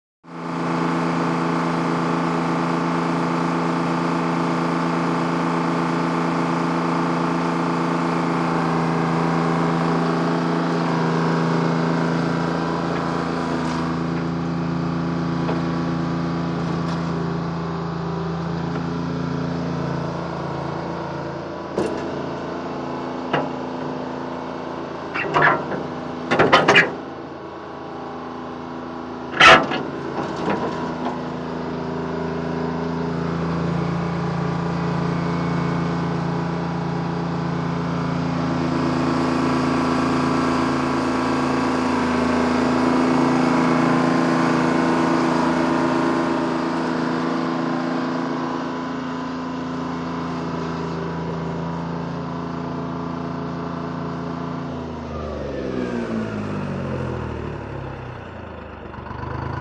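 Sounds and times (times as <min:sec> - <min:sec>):
excavator engine at fast idle: 0:00.4 - 0:59.5
excavator clanks and bangs: 0:25.2 - 0:27.1, 0:29.3 - 0:31.2.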